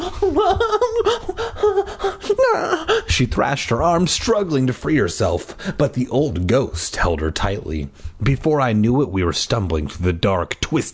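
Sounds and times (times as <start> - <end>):
person performing loud shaky sobbing gasps: 0.0 - 3.2
speech: 0.2 - 1.2, 2.5 - 10.9.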